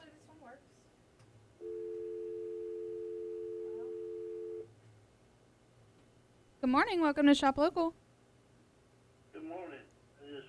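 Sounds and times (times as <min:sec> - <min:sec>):
telephone line tone: 0:01.6 - 0:04.7
speech: 0:06.6 - 0:08.0.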